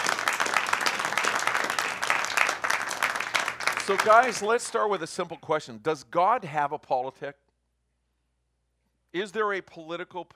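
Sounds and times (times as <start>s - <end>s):
crowd applauding: 0.0s - 4.9s
speech: 3.9s - 7.4s, 9.1s - 10.3s.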